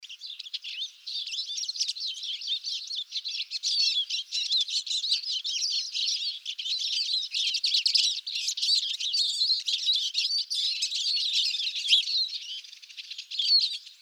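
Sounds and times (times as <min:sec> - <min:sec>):
Eurasian siskin flock twittering during a migratory stopover: 0:00.0 - 0:14.0.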